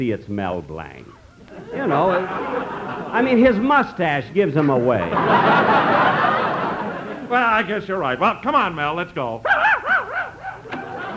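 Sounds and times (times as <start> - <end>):
speech: 0.0 - 6.1, 7.3 - 9.6
laughter: 1.4 - 8.4, 9.5 - 11.1
man imitating a dog barking with whiny yelps: 9.4 - 10.7.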